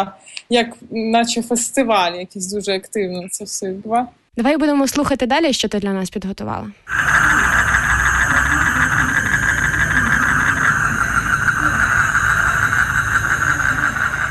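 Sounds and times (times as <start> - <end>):
speech: 0.0 - 7.8
dense continuous evening chirring drone: 6.9 - 14.2
low rumbling background: 6.9 - 14.2.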